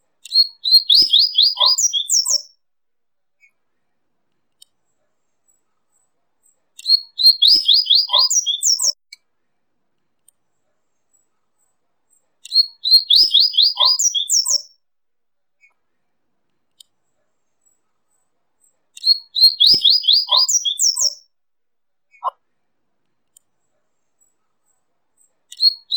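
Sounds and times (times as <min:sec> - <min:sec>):
Double-collared seedeater song of sharp downslurred whistled notes and high twitters: 0:00.2 - 0:02.5, 0:06.8 - 0:09.0, 0:12.4 - 0:14.7, 0:19.0 - 0:21.2, 0:25.5 - 0:25.9.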